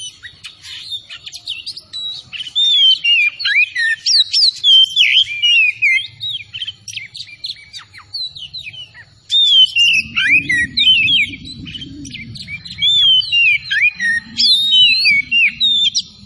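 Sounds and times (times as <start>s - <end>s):
oriental magpie-robin singing vigorously: 0.0s - 16.2s
low rumbling noise: 9.6s - 16.2s.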